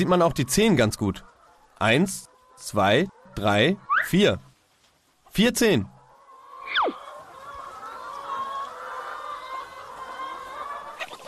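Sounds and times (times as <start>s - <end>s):
speech: 0.0s - 4.5s, 5.4s - 5.9s
flock of chickens clucking and murmuring: 0.0s - 11.2s
sharp falling chicken squawk: 1.3s - 4.1s, 6.0s - 11.2s.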